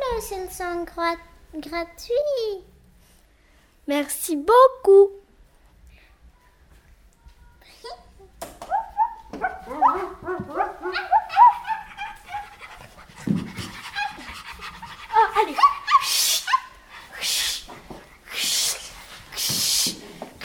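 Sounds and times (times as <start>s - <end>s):
speech: 0.1s - 2.7s, 3.9s - 5.2s
puppies whimpering: 8.7s - 12.7s
puppies panting: 9.4s - 19.7s.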